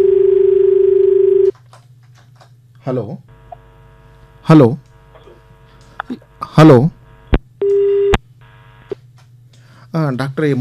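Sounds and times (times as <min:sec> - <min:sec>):
telephone line tone as an incoming call connects: 0:00.0 - 0:01.5, 0:07.6 - 0:09.0
speech: 0:02.8 - 0:03.3, 0:04.5 - 0:04.9, 0:06.1 - 0:07.0, 0:10.0 - 0:10.5.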